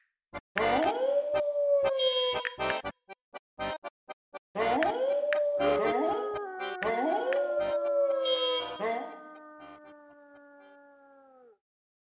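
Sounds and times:
wolves howling in chorus: 0:00.6 - 0:02.4, 0:04.6 - 0:11.6.

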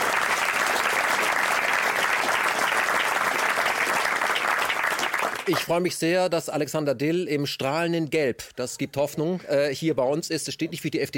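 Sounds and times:
audience applause welcoming a guest: 0:00.0 - 0:05.7
speech: 0:05.5 - 0:11.1.

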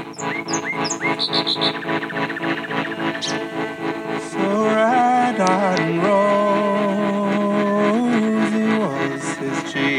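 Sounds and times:
bird singing a patterned song: 0:00.0 - 0:09.9.

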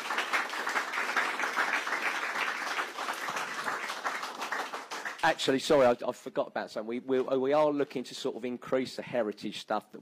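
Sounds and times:
audience applause: 0:00.0 - 0:05.4
speech: 0:05.2 - 0:10.0.

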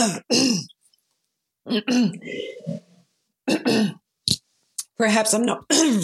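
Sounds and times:
speech: 0:00.0 - 0:00.7, 0:01.6 - 0:02.8, 0:03.5 - 0:04.0, 0:05.0 - 0:06.0
person with a foggy croaky throat clearing throat: 0:00.0 - 0:00.8, 0:01.7 - 0:02.8, 0:03.4 - 0:04.0.

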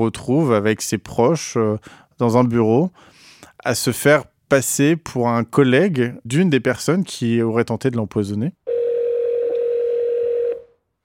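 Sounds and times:
speech: 0:00.0 - 0:08.6
telephone line tone as a call is placed: 0:08.7 - 0:10.8.

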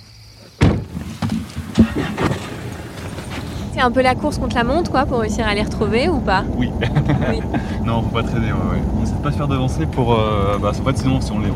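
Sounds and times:
car door banging as people get into a car: 0:00.6 - 0:03.7
soft thumps and clatters: 0:00.6 - 0:03.7
low steady rumble: 0:00.7 - 0:11.5
speech: 0:03.8 - 0:11.5
laughter: 0:06.6 - 0:08.3.

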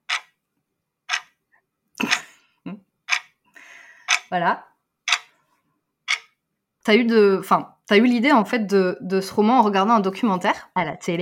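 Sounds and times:
clock ticking sound effect: 0:00.0 - 0:00.3, 0:01.1 - 0:01.3, 0:02.0 - 0:02.3, 0:03.1 - 0:03.3, 0:04.0 - 0:04.4, 0:05.0 - 0:05.4, 0:06.1 - 0:06.4
speech: 0:02.6 - 0:02.8, 0:04.3 - 0:04.7, 0:06.8 - 0:11.2.

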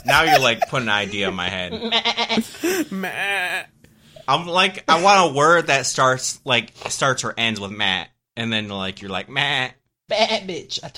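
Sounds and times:
laughter: 0:00.0 - 0:03.4
speech: 0:00.1 - 0:10.9
person imitating a goat's bleat: 0:01.8 - 0:03.7.

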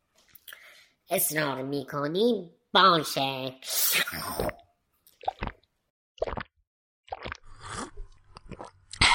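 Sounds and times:
speech: 0:01.1 - 0:04.6
wet mouth sounds of sipping and smacking nectar from a flower: 0:03.9 - 0:06.5, 0:07.1 - 0:09.1.

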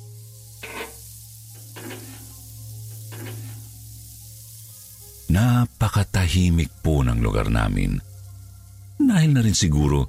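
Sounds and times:
food frying in a pan during cooking: 0:00.0 - 0:10.0
scraping stirs in a frying pan: 0:00.6 - 0:03.8
speech: 0:05.4 - 0:08.1, 0:09.0 - 0:10.0.

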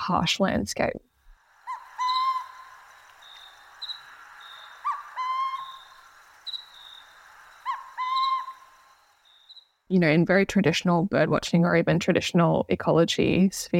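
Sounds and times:
speech: 0:00.1 - 0:01.1, 0:09.9 - 0:13.7
high-pitched insect drone: 0:01.4 - 0:09.8
burrowing owl rising whistled calls: 0:01.5 - 0:09.8.

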